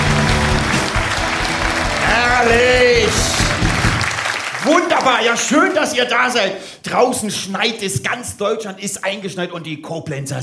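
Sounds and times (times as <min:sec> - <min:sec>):
audience applause at a live stage show: 0:00.0 - 0:05.9
speech: 0:04.7 - 0:10.4.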